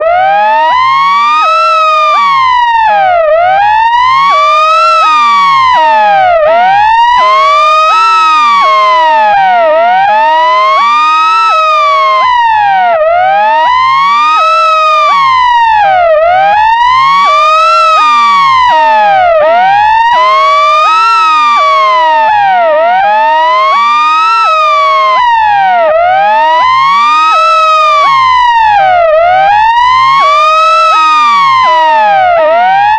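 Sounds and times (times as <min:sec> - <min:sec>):
ambulance siren wailing: 0:00.0 - 0:32.9.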